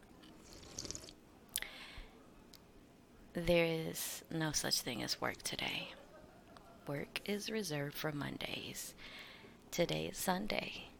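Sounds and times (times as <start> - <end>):
wet slurping sips of tea from a cup: 0.4 - 1.2
speech: 3.4 - 6.0, 6.9 - 10.9.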